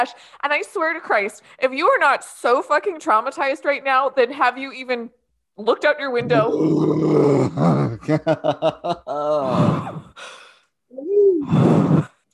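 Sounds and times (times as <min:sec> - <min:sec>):
speech: 0:00.0 - 0:10.0
person gulping wine: 0:06.2 - 0:08.0
voiced groan-like breaths: 0:06.2 - 0:08.1, 0:09.2 - 0:12.3
laughter: 0:07.6 - 0:09.7
loud satisfied exhale: 0:09.4 - 0:12.2.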